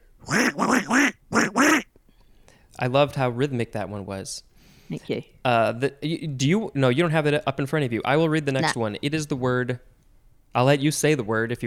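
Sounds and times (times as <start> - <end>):
person imitating duck quacks: 0.2 - 1.9
speech: 2.8 - 9.9, 10.6 - 11.6.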